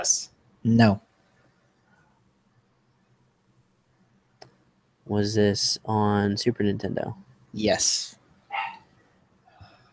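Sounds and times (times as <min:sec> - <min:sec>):
speech: 0:00.0 - 0:01.1, 0:05.1 - 0:08.2
faint hum: 0:00.0 - 0:09.9
dog barking: 0:08.5 - 0:08.8.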